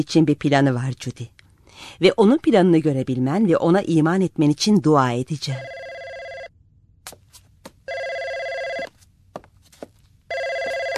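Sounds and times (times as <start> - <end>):
speech: 0.0 - 5.8
telephone bell ringing: 5.6 - 6.5, 7.9 - 8.9, 10.3 - 10.9.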